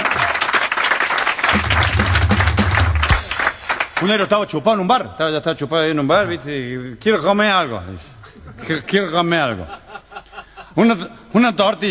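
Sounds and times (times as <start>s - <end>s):
audience applause: 0.0s - 4.4s
laughter: 0.0s - 4.4s, 6.0s - 11.8s
low hum: 1.6s - 4.1s
speech: 4.0s - 10.0s, 10.8s - 11.8s.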